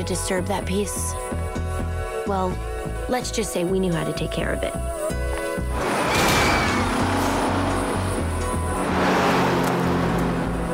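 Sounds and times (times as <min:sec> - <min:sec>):
speech: 0:00.0 - 0:01.6, 0:02.3 - 0:05.0
traffic: 0:05.4 - 0:10.7
bus driving past with deep engine rumble: 0:05.5 - 0:10.7.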